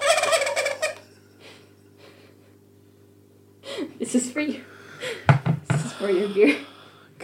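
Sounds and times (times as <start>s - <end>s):
turkey gobbling: 0.0s - 1.0s
low steady hum: 0.0s - 7.2s
speech: 4.0s - 5.4s, 6.0s - 7.2s.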